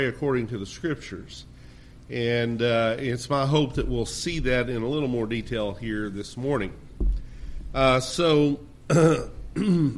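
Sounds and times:
speech: 0:00.0 - 0:01.5, 0:02.1 - 0:09.9
man clearing throat: 0:08.9 - 0:09.9.

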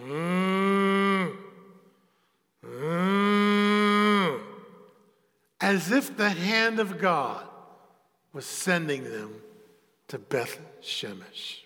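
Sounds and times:
voice imitating cows lowing: 0:00.0 - 0:01.6, 0:02.6 - 0:04.6
speech: 0:05.6 - 0:07.5, 0:08.4 - 0:09.5, 0:10.1 - 0:11.6.

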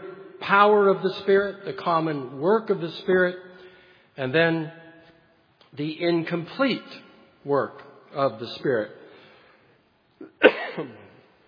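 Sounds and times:
speech: 0:00.5 - 0:03.5, 0:04.2 - 0:04.8, 0:05.7 - 0:09.0, 0:10.8 - 0:11.0
man coughing during a church sermon: 0:10.2 - 0:11.2.

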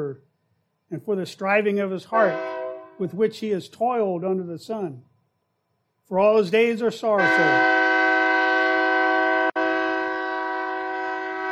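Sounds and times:
speech: 0:00.9 - 0:05.1, 0:06.1 - 0:07.8
train horn blaring in a long steady chord: 0:02.1 - 0:03.0, 0:07.2 - 0:11.5.

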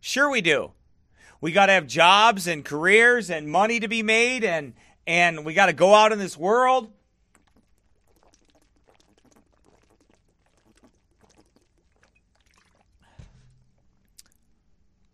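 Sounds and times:
speech: 0:00.0 - 0:00.8, 0:01.4 - 0:07.0
person drinking water outdoors at 40 below: 0:07.1 - 0:14.5.

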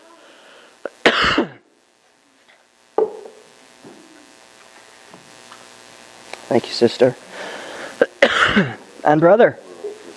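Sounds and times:
low hum: 0:00.0 - 0:10.1
person coughing: 0:01.0 - 0:01.6, 0:08.0 - 0:08.8
speech: 0:06.5 - 0:07.2, 0:08.6 - 0:09.6.

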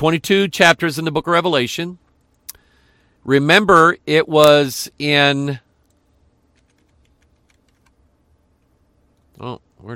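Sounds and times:
speech: 0:00.0 - 0:02.0, 0:03.2 - 0:05.6, 0:09.4 - 0:09.9
soft rapid typing on a computer keyboard: 0:05.8 - 0:08.0.

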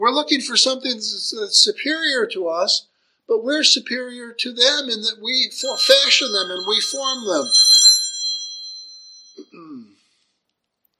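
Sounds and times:
speech: 0:00.0 - 0:07.7
phone notification chime during a sermon: 0:05.6 - 0:09.4.

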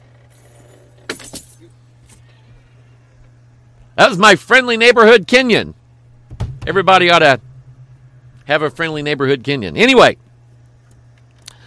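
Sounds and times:
low steady hum: 0:00.0 - 0:11.6
keys jangling as they are handed over: 0:00.4 - 0:02.2
speech: 0:04.0 - 0:05.8, 0:06.7 - 0:07.5, 0:08.5 - 0:10.2.

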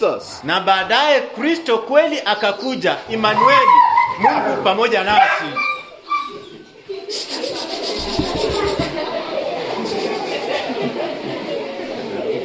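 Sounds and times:
speech: 0:00.0 - 0:05.7
dogs barking: 0:03.3 - 0:06.6
laughter: 0:05.4 - 0:12.4.

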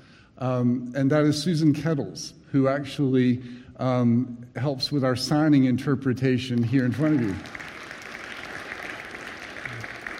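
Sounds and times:
speech: 0:00.4 - 0:07.7
audience applause: 0:06.9 - 0:10.1.

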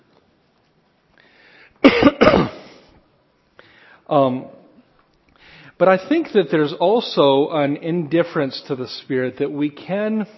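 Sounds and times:
person with a tickle in the throat clearing it: 0:01.8 - 0:02.8
speech: 0:04.1 - 0:04.6, 0:05.8 - 0:10.3.

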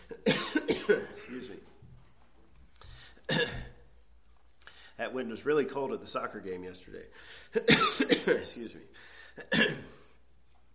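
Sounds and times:
harsh coughing: 0:00.0 - 0:01.6, 0:03.2 - 0:03.9, 0:07.5 - 0:08.5, 0:09.3 - 0:10.2
speech: 0:05.2 - 0:10.0.

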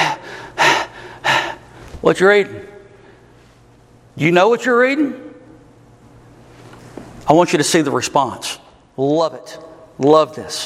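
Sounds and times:
person imitating gasping for air: 0:00.0 - 0:01.7
speech: 0:02.0 - 0:02.7, 0:04.2 - 0:05.2, 0:07.3 - 0:10.6.

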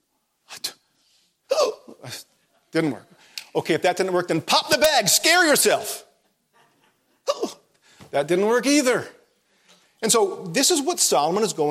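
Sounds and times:
person hiccuping: 0:01.5 - 0:02.0, 0:07.3 - 0:07.7
speech: 0:02.1 - 0:06.1, 0:08.1 - 0:09.2, 0:10.0 - 0:11.7.

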